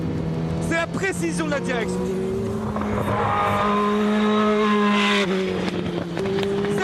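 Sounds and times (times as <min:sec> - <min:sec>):
Formula 1 car V8 engine revving high: 0:00.2 - 0:06.8
speech: 0:00.8 - 0:04.6.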